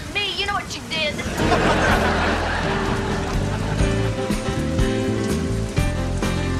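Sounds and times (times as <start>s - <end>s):
steady rain falling: 0.0s - 6.5s
laughter: 1.2s - 4.1s.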